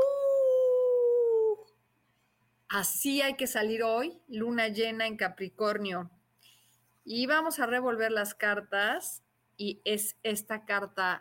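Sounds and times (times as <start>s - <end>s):
person imitating a howl at the moon: 0.0s - 1.7s
speech: 2.7s - 6.2s, 7.1s - 11.1s.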